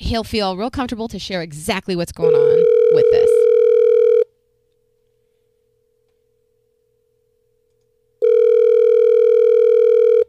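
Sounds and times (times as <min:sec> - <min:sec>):
speech: 0:00.1 - 0:03.4
buzzy electronic telephone line ring tone: 0:02.2 - 0:04.3, 0:08.2 - 0:10.2.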